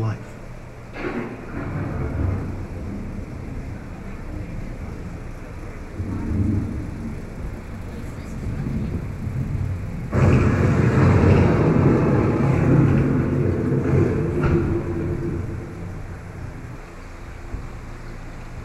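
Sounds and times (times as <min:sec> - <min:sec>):
thunder rumbling from an approaching storm: 0:00.5 - 0:18.6.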